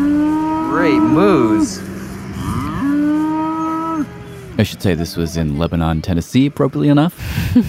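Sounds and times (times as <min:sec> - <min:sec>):
cow mooing on a large farm in Lebanon Tennessee: 0:00.0 - 0:04.6
speech: 0:00.9 - 0:01.8, 0:04.6 - 0:07.6.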